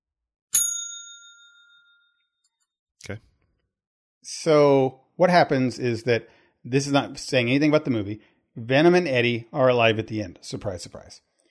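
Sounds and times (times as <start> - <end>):
single bright bell strike: 0.6 - 2.1
speech: 3.0 - 3.3, 4.2 - 11.3.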